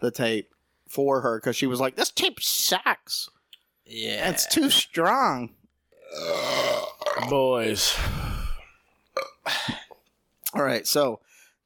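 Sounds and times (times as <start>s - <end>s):
speech: 0.0s - 8.3s, 10.5s - 11.3s
low croaky burp: 3.9s - 4.7s, 6.0s - 7.4s, 9.1s - 9.9s.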